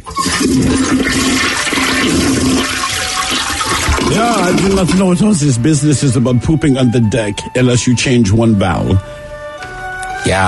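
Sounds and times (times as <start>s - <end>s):
toilet flushing: 0.0s - 5.9s
speech: 4.6s - 9.2s, 10.2s - 10.4s.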